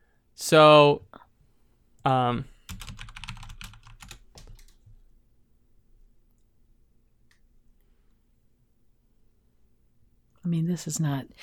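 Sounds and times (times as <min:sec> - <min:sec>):
low hum: 0:00.0 - 0:11.4
speech: 0:00.4 - 0:01.2, 0:02.0 - 0:02.8, 0:10.5 - 0:11.4
computer keyboard typing: 0:02.7 - 0:04.9.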